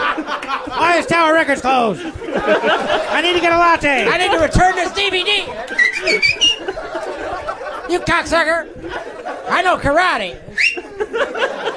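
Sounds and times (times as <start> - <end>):
laughter: 0.0 - 11.7
speech: 1.0 - 6.4, 7.9 - 10.5
person whistling short bright notes: 5.8 - 6.6, 10.6 - 10.8.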